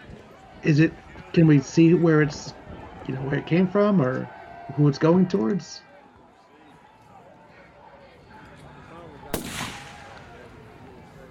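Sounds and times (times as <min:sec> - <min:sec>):
faint voices murmuring: 0:00.0 - 0:11.3
speech: 0:00.6 - 0:05.9
gunshot sound effect: 0:09.3 - 0:10.4.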